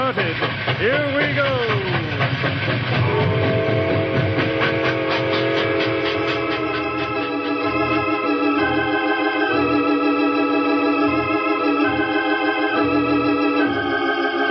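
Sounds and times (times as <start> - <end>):
locomotive train pulling away with dense mechanical clatter: 0.0 - 14.5
speech: 0.1 - 1.6
sustained whistle-like tone: 3.0 - 7.8.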